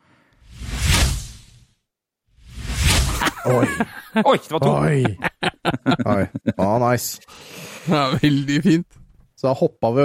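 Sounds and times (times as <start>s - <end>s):
broad whooshing swoosh transition effect: 0.4s - 1.7s, 2.4s - 3.2s
laughter: 3.1s - 8.9s
speech: 3.4s - 10.0s.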